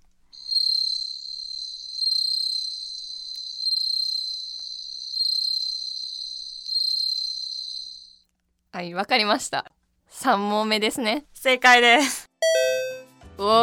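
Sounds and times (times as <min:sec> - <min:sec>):
bell cricket chirping: 0:00.3 - 0:08.3
speech: 0:08.8 - 0:12.3, 0:13.4 - 0:13.6.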